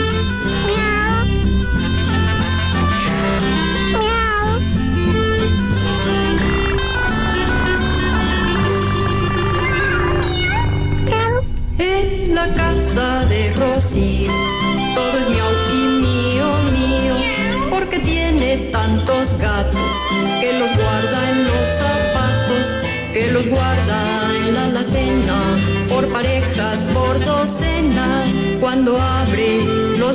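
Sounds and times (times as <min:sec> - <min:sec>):
meowing woven through the music: 0:00.0 - 0:11.4, 0:14.0 - 0:19.0, 0:19.7 - 0:25.9
lively full-band Spanish-language song about cats: 0:01.7 - 0:30.1.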